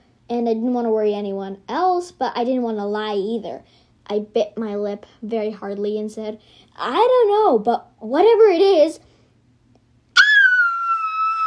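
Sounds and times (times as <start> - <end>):
speech: 0.3 - 9.1
sudden piercing high shriek: 10.2 - 11.4.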